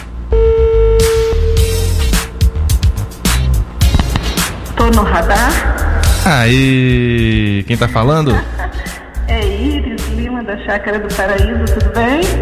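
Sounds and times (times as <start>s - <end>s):
telephone ringback tone: 0.3s - 2.0s
broadband noise bursts: 2.2s - 4.9s
speech: 4.9s - 8.5s, 9.3s - 12.4s.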